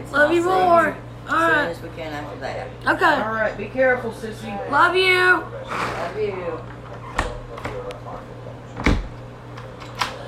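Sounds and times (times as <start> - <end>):
speech: 0.1 - 6.8
sticking door being opened and closed: 8.8 - 9.2.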